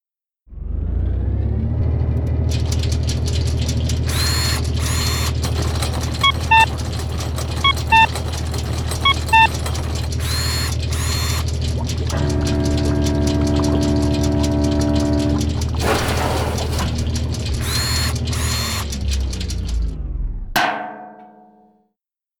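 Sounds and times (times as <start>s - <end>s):
mechanical random number generator grinding and jamming: 0.5s - 20.6s
short high beeps: 6.2s - 6.7s, 7.6s - 8.1s
sustained whine: 9.1s - 20.6s.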